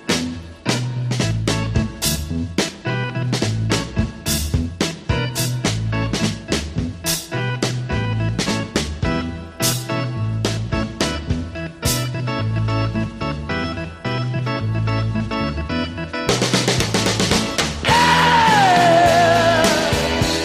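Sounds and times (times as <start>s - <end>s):
driving rock track with punchy beat and guitars: 0.0s - 20.4s
high wailing scream sliding downward over the band: 17.9s - 20.2s.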